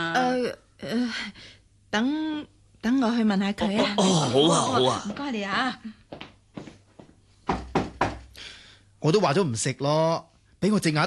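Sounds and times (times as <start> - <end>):
speech: 0.5 - 6.0, 9.0 - 11.0
knocking on a door: 7.4 - 8.4.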